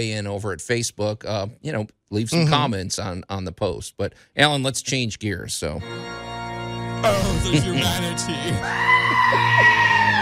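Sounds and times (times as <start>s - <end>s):
speech: 0.0s - 6.3s, 7.0s - 9.8s
loud scream sound effect: 8.6s - 10.1s.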